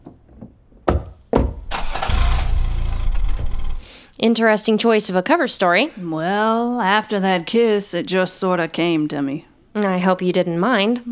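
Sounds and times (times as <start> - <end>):
car engine cranking and idling: 1.5 - 3.9
speech: 4.2 - 11.1.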